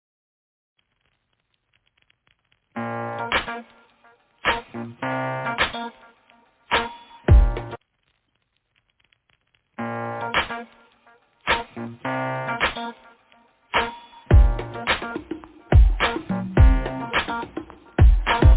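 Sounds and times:
instrumental pop song opening with punchy rhythmic chord hits: 2.8s - 7.8s, 9.8s - 10.8s, 11.4s - 18.5s.

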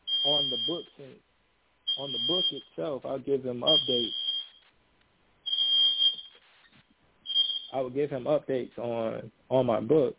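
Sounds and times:
fire alarm beep: 0.0s - 1.0s, 1.9s - 2.8s, 3.6s - 4.7s, 5.4s - 7.8s
quiet room noise: 0.0s - 10.1s
speech: 0.2s - 1.3s, 2.0s - 4.2s, 7.7s - 10.1s.

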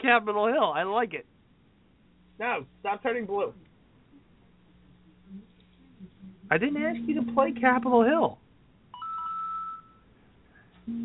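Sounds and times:
speech: 0.0s - 1.4s, 2.4s - 3.6s, 5.3s - 8.4s, 10.9s - 11.0s
lower steady phone alert tone: 5.0s - 8.0s, 10.8s - 11.0s
phone alert tone from incoming text messages: 6.7s - 7.7s, 9.0s - 10.0s.

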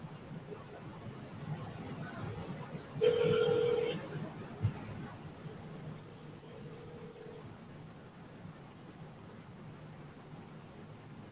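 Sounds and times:
faint noise: 0.0s - 11.3s
ringback tone over a phone line calling a mobile number: 3.0s - 3.9s.

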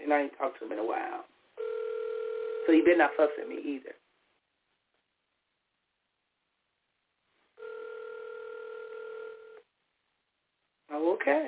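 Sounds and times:
speech: 0.1s - 1.4s, 2.6s - 4.0s, 10.9s - 11.4s
outgoing call phone ringing tone through a telephone line: 1.6s - 3.6s, 7.6s - 9.6s.

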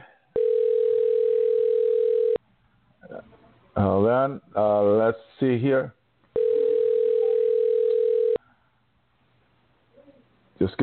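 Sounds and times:
telephone dial tone while a call is being dialed: 0.4s - 2.4s, 6.4s - 8.4s
speech: 3.8s - 6.0s, 10.6s - 10.8s.

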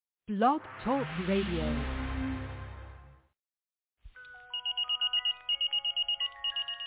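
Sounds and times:
speech: 0.3s - 2.0s
old phone or pager ringing with high electronic beeps: 4.5s - 6.8s.

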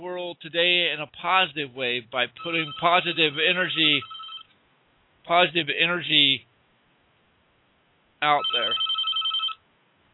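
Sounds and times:
speech: 0.4s - 4.2s, 5.3s - 6.5s, 8.2s - 8.9s
electronic telephone ringing in a live radio studio: 2.4s - 4.5s, 8.2s - 9.6s.

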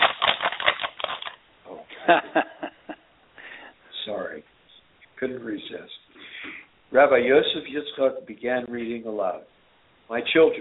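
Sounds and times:
letter pages rustling: 0.0s - 1.4s
laughter: 1.9s - 3.0s
speech: 2.1s - 2.6s, 5.2s - 6.0s, 6.9s - 10.6s.

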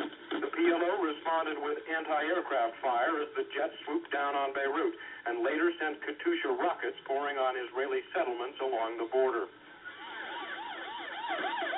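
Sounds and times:
speech: 1.3s - 9.6s
ambulance sirens wailing through Beirut: 10.0s - 11.7s.

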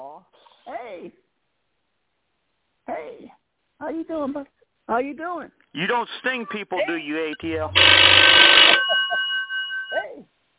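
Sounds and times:
speech: 3.9s - 8.8s
telephone ringing with a steady high electronic tone: 6.8s - 10.2s
short burst of harsh noise: 7.6s - 8.8s.

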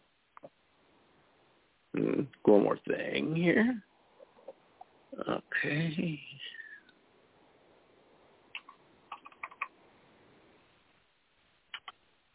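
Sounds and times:
speech: 2.0s - 3.9s, 5.2s - 6.6s
typing on a computer keyboard: 8.6s - 9.7s.

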